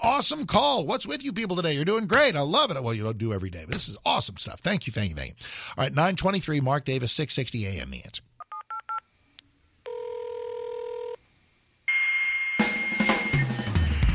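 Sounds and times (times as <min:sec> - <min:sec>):
speech: 0:00.0 - 0:08.3
2400 bps dial-up modem high answer whistle: 0:11.9 - 0:14.0
2400 bps dial-up modem touch-tone beeps: 0:11.9 - 0:14.0.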